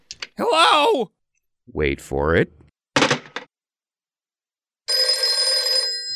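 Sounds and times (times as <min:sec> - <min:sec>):
speech: 0:00.4 - 0:02.6
telephone bell ringing with a metallic trill: 0:04.9 - 0:06.1.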